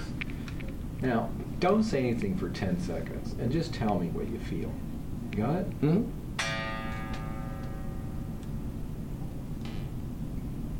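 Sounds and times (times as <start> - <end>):
constant low hum: 0.0 - 10.7
speech: 1.0 - 6.2
guitar fitted with dual stabilizers ringing: 6.4 - 8.4.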